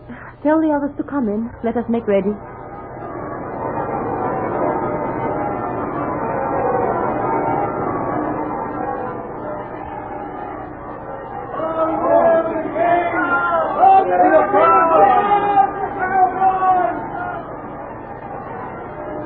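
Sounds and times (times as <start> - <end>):
speech: 0.4 - 2.5
church bells ringing for a royal wedding day: 1.5 - 19.2
crowd chatter and babble: 11.5 - 17.6.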